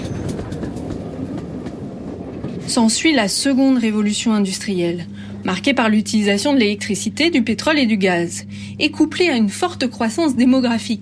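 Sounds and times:
train wheels clattering along railway tracks: 0.0 - 2.9
train rumbling along the tracks: 0.0 - 11.0
speech: 2.7 - 11.0.

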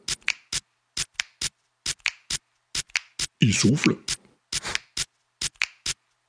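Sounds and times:
man snapping his fingers: 0.2 - 0.5, 2.9 - 3.2, 5.6 - 5.8
speech: 3.4 - 4.1.

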